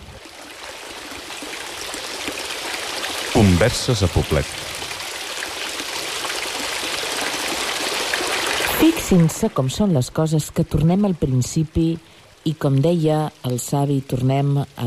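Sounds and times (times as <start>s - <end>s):
steady running water flowing and splashing: 0.0s - 14.8s
speech: 3.4s - 4.7s, 8.8s - 14.8s.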